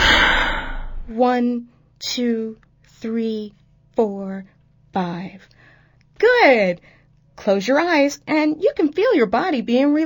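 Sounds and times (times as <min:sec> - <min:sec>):
deep exhale during a breathing exercise: 0:00.0 - 0:01.1
speech: 0:01.1 - 0:05.6, 0:06.2 - 0:10.0.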